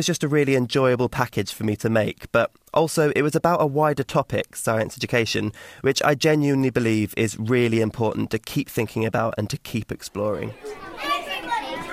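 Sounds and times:
speech: 0:00.0 - 0:11.1
primary-school class of ten-year-old children chattering before lunchtime in Devon, England: 0:10.1 - 0:11.9.

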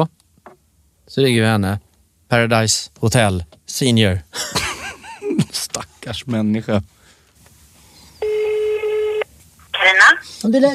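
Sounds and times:
faint hiss: 0:00.0 - 0:10.7
speech: 0:01.1 - 0:04.6, 0:05.5 - 0:07.0, 0:10.4 - 0:10.7
telephone dialing tone as a phone call is placed: 0:08.2 - 0:09.3.

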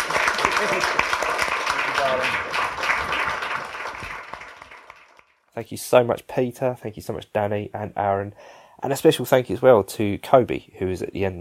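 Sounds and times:
audience applause: 0:00.0 - 0:05.3
speech: 0:05.6 - 0:11.4.

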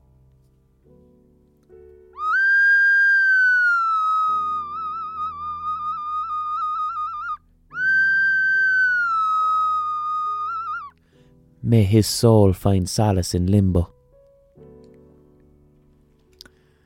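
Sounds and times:
Spanish clay whistle ocarina melody: 0:02.2 - 0:11.0
speech: 0:11.7 - 0:14.0.

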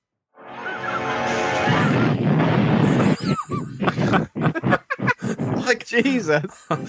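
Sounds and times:
crackling bursts and debris-like chirps: 0:00.4 - 0:06.8
loud roaring explosion of a figure hitting the ground: 0:00.6 - 0:05.6
laughter: 0:02.9 - 0:06.8
speech: 0:05.7 - 0:06.8.

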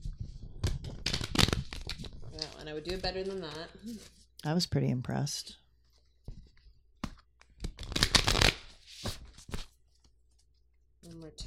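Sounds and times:
deck of cards being shuffled: 0:00.1 - 0:04.2, 0:05.8 - 0:10.4
speech: 0:02.7 - 0:05.6.

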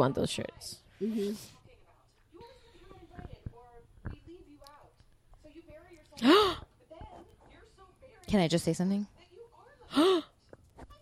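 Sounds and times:
speech: 0:00.0 - 0:01.6, 0:06.2 - 0:06.7, 0:08.3 - 0:09.1, 0:09.9 - 0:10.3
person gasping: 0:06.2 - 0:06.7, 0:09.9 - 0:10.3.

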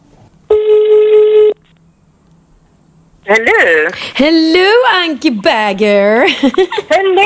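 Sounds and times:
telephone ringing tone: 0:00.5 - 0:01.6
speech: 0:03.3 - 0:07.2.

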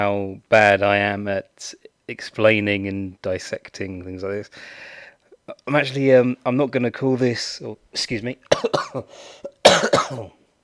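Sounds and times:
speech: 0:00.0 - 0:10.4
person coughing: 0:08.5 - 0:10.4.

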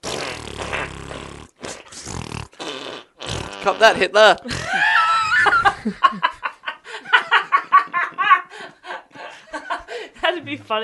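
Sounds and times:
buzzy fart noise from a novelty fart bag: 0:00.0 - 0:04.6
speech: 0:03.6 - 0:04.8
laughter: 0:04.5 - 0:10.1.

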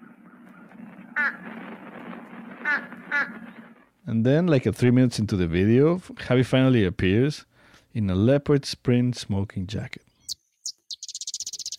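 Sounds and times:
fish crow giving nasal caws: 0:00.0 - 0:01.4, 0:02.6 - 0:03.5
speech: 0:01.2 - 0:01.8, 0:02.6 - 0:10.0.

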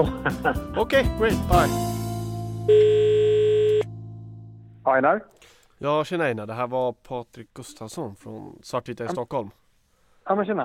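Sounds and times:
speech: 0:00.0 - 0:02.0, 0:02.7 - 0:03.4, 0:04.8 - 0:09.6, 0:10.3 - 0:10.6
telephone ringing back on an outgoing call: 0:02.7 - 0:03.9.

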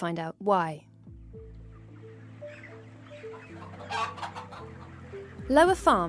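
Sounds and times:
speech: 0:00.0 - 0:01.5, 0:03.9 - 0:06.0
chickens clucking and squawking in a chicken shed: 0:01.5 - 0:05.6.

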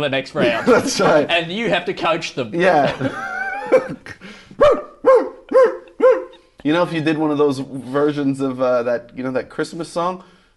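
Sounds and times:
speech: 0:00.0 - 0:04.0, 0:06.6 - 0:10.4
laughter: 0:00.4 - 0:01.3, 0:02.6 - 0:04.4
dog barking: 0:04.6 - 0:06.4.

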